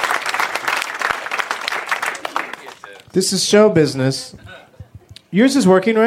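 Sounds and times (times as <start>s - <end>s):
audience applause: 0.0s - 3.1s
speech: 3.1s - 4.5s, 5.3s - 6.0s.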